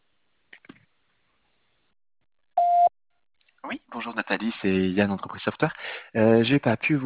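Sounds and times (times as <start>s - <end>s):
voicemail answering machine record beep: 2.6s - 2.9s
speech: 4.0s - 7.0s.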